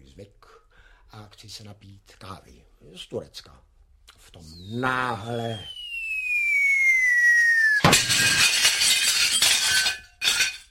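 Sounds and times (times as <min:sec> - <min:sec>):
speech: 0:01.1 - 0:05.8
high descending whistle: 0:04.4 - 0:08.5
loud bang: 0:07.7 - 0:08.6
coffee cup shattering, crockery crashing: 0:07.8 - 0:10.6.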